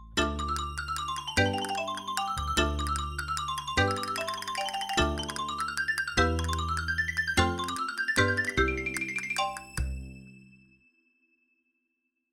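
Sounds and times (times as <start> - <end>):
xylophone tapping: 0.2 - 10.0.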